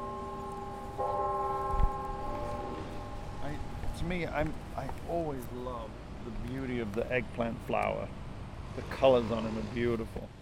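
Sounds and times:
university clock tower bell chiming at a campus garden: 0:00.0 - 0:04.2
outdoor noise: 0:00.0 - 0:10.3
speech: 0:04.0 - 0:08.2, 0:08.8 - 0:10.3.

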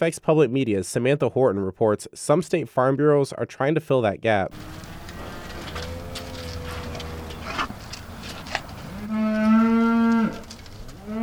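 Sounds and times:
speech: 0:00.0 - 0:04.9
outdoor ambience: 0:04.4 - 0:11.2
beef cattle mooing on a family farm in northern Indiana: 0:04.5 - 0:11.2.

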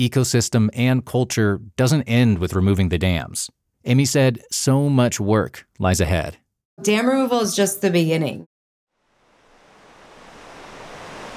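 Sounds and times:
speech: 0:00.0 - 0:08.5
river water rushing: 0:09.2 - 0:11.3.

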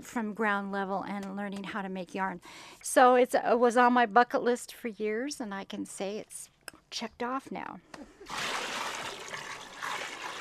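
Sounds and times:
speech: 0:00.0 - 0:08.7
water pouring into a plastic tub: 0:08.3 - 0:10.4.

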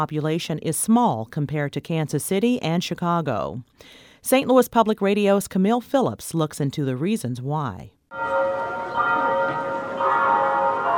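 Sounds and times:
speech: 0:00.0 - 0:08.6
church bell in North St. Louis County striking noon: 0:08.1 - 0:10.9.

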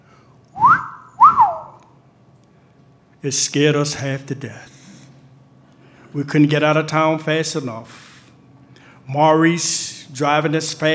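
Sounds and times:
person giving a loud two-note wolf whistle at a woman outside a store: 0:00.6 - 0:01.9
speech: 0:03.2 - 0:04.8, 0:06.1 - 0:08.0, 0:09.1 - 0:10.9.

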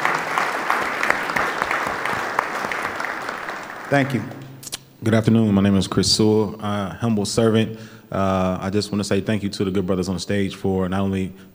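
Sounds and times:
crowd applauding: 0:00.0 - 0:04.7
speech: 0:03.9 - 0:04.4, 0:05.0 - 0:11.5.

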